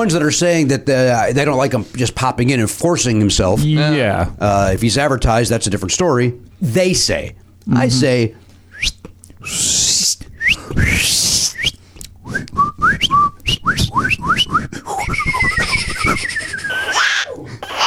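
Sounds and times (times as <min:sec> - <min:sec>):
speech: 0:00.0 - 0:14.9
people whistling a tune: 0:08.7 - 0:17.0
laughter: 0:13.9 - 0:17.8.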